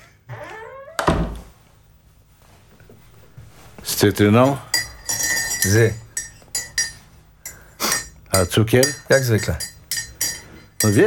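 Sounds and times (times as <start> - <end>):
door creaking with a squeal: 0.0 - 1.5
door shutting with a heavy thud: 0.6 - 1.5
speech: 4.0 - 4.7, 5.6 - 6.0, 8.4 - 9.7, 10.8 - 11.0.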